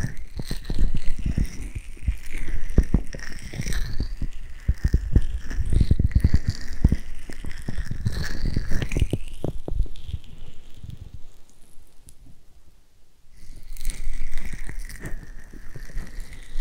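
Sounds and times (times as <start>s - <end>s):
ear massage rubbing with scratchy strokes: 0.0s - 12.0s, 13.4s - 16.5s.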